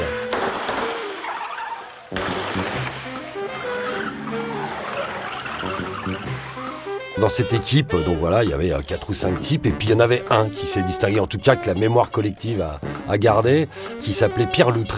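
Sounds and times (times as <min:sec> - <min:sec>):
tires squealing and screeching: 0:00.0 - 0:09.0
Citroën Traction Avant car roaring past at speed: 0:02.6 - 0:06.8
speech: 0:07.2 - 0:14.9.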